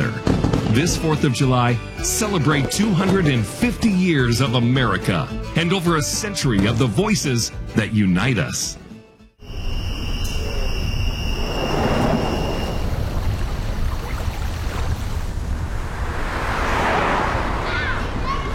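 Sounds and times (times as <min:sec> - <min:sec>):
speech: 0:00.7 - 0:08.8
constant rumbling wind-like noise: 0:09.5 - 0:18.5
motorcycles rushing past: 0:15.3 - 0:18.5.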